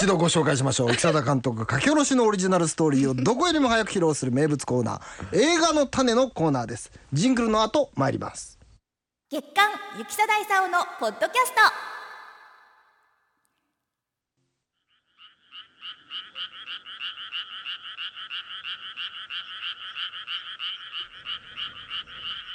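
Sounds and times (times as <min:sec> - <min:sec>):
speech: 0:00.0 - 0:08.6, 0:09.3 - 0:12.0
frogs croaking from a rice paddy: 0:14.8 - 0:22.5.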